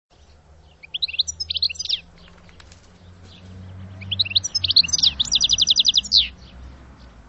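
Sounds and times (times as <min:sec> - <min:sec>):
bird twittering: 0:00.6 - 0:02.7, 0:03.3 - 0:06.6.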